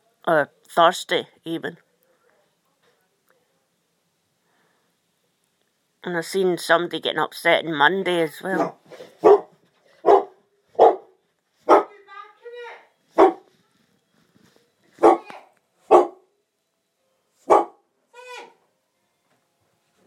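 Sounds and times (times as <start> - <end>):
speech: 0.2 - 1.9, 6.0 - 9.4
dog barking loudly: 8.6 - 12.0, 13.2 - 13.5, 15.0 - 16.3, 17.4 - 17.8
dog's higher whining yelps: 15.0 - 16.2.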